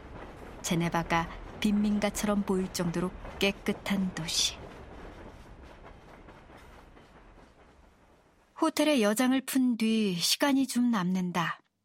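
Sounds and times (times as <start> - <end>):
train wheels clacking over the rails: 0.0 - 8.6
rumble inside a moving Swiss train bound for Zurich: 0.0 - 10.4
speech: 0.6 - 4.6, 8.6 - 11.6.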